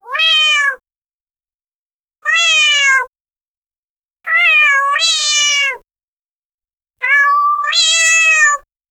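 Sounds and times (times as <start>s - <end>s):
slime cat meowing: 0.0s - 0.8s, 2.2s - 3.1s, 4.3s - 5.8s, 7.0s - 8.7s.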